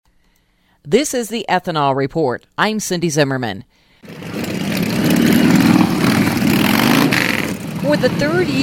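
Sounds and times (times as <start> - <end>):
speech: 0.8 - 4.2, 7.9 - 8.6
motorcycle engines idling and revving at a rally in South Dakota: 4.0 - 8.6.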